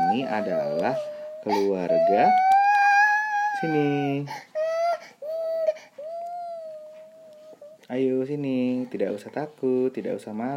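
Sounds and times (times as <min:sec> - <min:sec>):
young child crying: 0:00.0 - 0:07.8
speech: 0:00.1 - 0:02.6, 0:03.6 - 0:04.5, 0:07.9 - 0:10.5.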